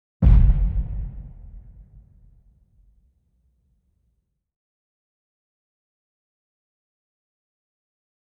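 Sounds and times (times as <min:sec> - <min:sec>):
large booming explosion: 0:00.2 - 0:02.3.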